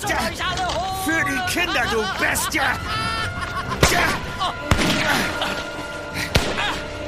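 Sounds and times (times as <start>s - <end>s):
speech: 0.2s - 3.1s, 3.9s - 4.3s
laughter: 0.2s - 6.9s
gunshots fired at night: 3.8s - 5.6s, 6.3s - 6.9s.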